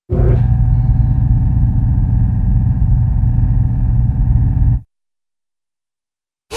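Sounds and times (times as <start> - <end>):
large low-end cartoon machine hum starting up: 0.1 - 4.9.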